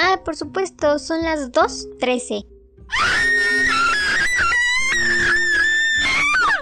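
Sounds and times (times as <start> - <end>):
speech: 0.2 - 3.4
person screaming in a high wavering shriek: 2.9 - 6.6.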